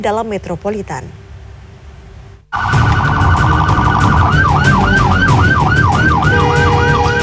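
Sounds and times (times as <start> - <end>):
speech: 0.0 - 1.2
traffic noise: 2.1 - 7.2
ambulance siren warbling and wailing: 2.5 - 7.2.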